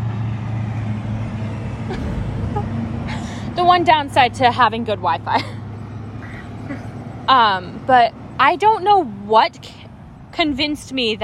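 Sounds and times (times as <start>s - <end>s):
heavy trucks passing by outside: 0.0s - 11.2s
speech: 1.9s - 5.6s, 6.7s - 9.8s, 10.4s - 11.2s.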